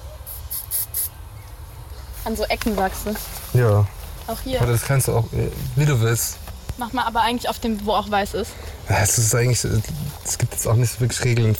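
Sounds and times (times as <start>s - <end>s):
spray paint can hissing out short bursts: 0.2s - 1.2s
speech: 2.2s - 11.5s.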